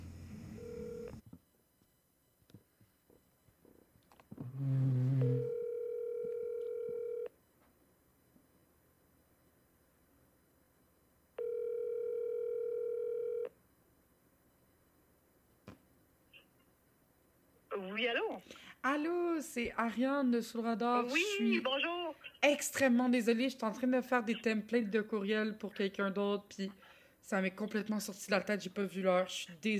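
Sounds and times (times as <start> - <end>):
telephone ringing tones while a call is being placed: 0.5 - 1.2, 5.4 - 7.3, 11.4 - 13.5
speech: 18.0 - 29.7.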